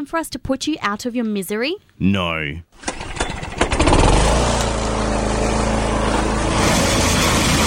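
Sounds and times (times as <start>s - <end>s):
speech: 0.0s - 2.9s
lawn mower engine running: 2.8s - 7.6s.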